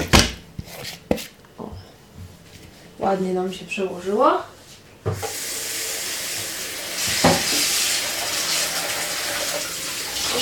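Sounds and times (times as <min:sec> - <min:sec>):
speech: 0:03.0 - 0:04.5
chicken breast coated in instant-noodle seasoning sizzling in a frying pan: 0:05.2 - 0:10.4.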